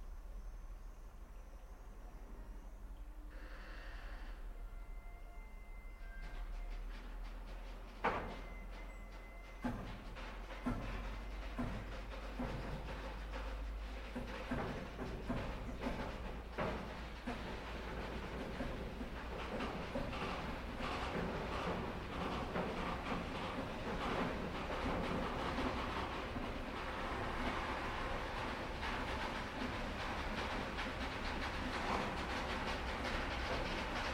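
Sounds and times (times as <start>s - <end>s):
old-fashioned locomotive rumble: 0.0s - 34.1s
brief metallic squeals: 0.4s - 11.4s
locomotive wheels clacking on tracks: 3.4s - 34.1s.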